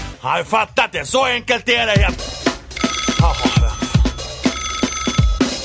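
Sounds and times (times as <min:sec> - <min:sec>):
speech: 0:00.3 - 0:02.4
phone electronic ringtone with low thumps: 0:02.7 - 0:05.6.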